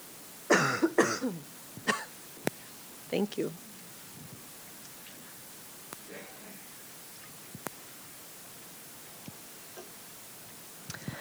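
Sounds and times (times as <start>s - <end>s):
person coughing: 0.5s - 2.1s
speech: 3.1s - 3.7s.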